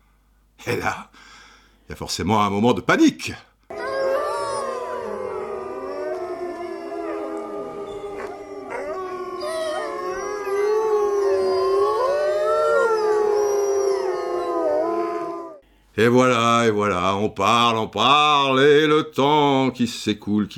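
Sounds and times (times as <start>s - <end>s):
speech: 0.6s - 1.3s, 1.9s - 3.5s, 16.0s - 20.5s
pack of wolves howling: 3.7s - 15.6s.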